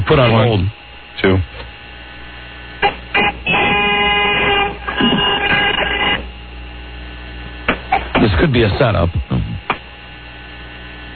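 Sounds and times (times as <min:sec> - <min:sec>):
speech: 0:00.1 - 0:01.5, 0:08.6 - 0:09.5
loud brassy horn honks: 0:02.8 - 0:05.8.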